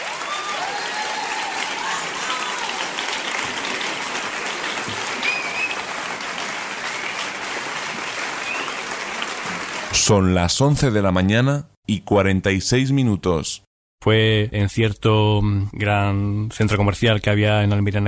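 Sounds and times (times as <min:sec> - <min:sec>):
crowd applause: 0:00.0 - 0:10.0
faint whistles from the crowd: 0:05.2 - 0:05.9, 0:08.4 - 0:08.8
speech: 0:10.1 - 0:18.0.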